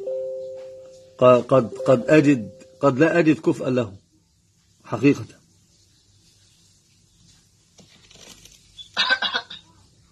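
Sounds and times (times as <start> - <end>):
speech: 1.2 - 4.0, 4.9 - 5.4
rough raspy throat clearing: 9.0 - 9.8.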